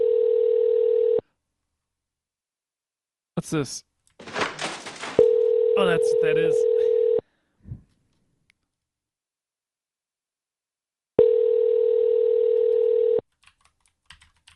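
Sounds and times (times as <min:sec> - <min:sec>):
phone ringing with a steady electronic tone: 0:00.0 - 0:01.2, 0:05.2 - 0:07.2, 0:11.2 - 0:13.2
speech: 0:03.4 - 0:03.9, 0:05.8 - 0:06.7.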